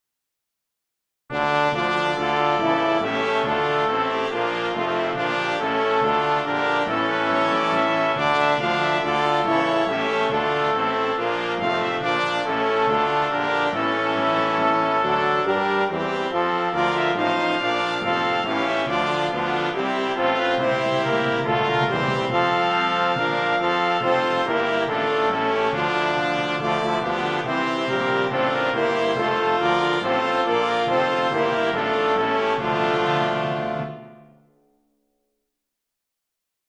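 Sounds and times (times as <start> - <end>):
traditional hymn played by brass: 1.3 - 34.3.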